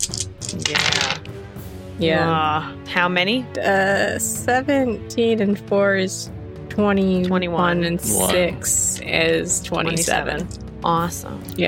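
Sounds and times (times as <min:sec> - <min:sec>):
dice clattering across a hard tabletop: 0:00.0 - 0:01.3
speech: 0:02.0 - 0:11.6.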